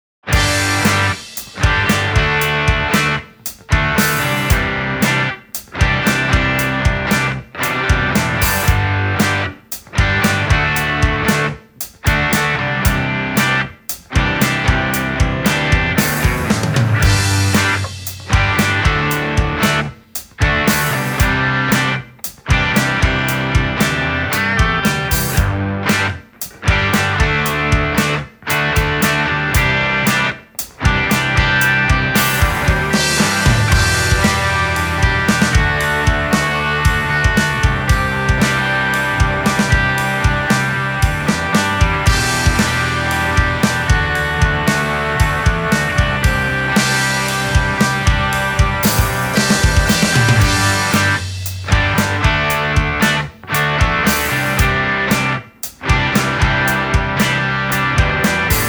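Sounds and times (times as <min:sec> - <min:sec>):
driving mid-tempo rock music: 0:00.2 - 0:58.6.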